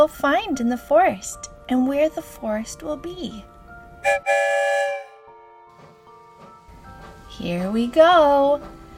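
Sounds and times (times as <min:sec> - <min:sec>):
speech: 0:00.0 - 0:05.0, 0:07.4 - 0:08.8
train whistle blowing: 0:04.0 - 0:05.4.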